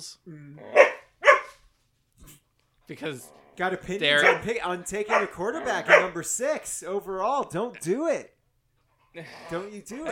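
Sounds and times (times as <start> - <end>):
speech: 0.0 - 0.8, 2.9 - 8.4, 9.2 - 10.0
dog barking: 0.7 - 1.6, 4.1 - 4.5, 5.1 - 6.2.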